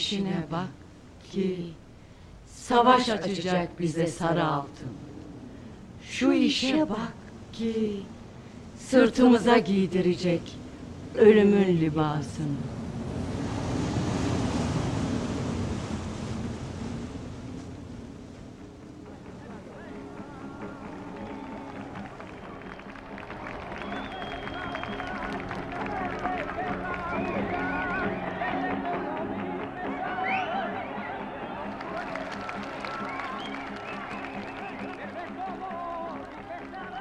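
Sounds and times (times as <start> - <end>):
speech: 0.0 - 1.8, 2.6 - 5.1, 6.0 - 8.2, 8.8 - 12.8
sea waves washing around a sailing ship in open water: 0.0 - 36.9
wind noise: 4.4 - 28.8.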